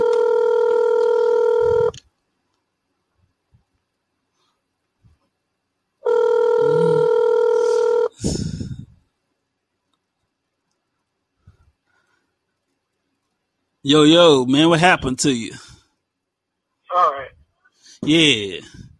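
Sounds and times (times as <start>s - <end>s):
long steady electronic phone ring tones: 0.0s - 2.0s, 6.0s - 8.2s
speech: 13.9s - 15.7s, 18.0s - 18.8s.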